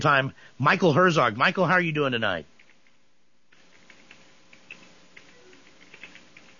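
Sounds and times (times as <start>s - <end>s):
speech: 0.0s - 2.5s
faint steady hiss: 0.0s - 6.5s
typing on a computer keyboard: 2.6s - 6.5s.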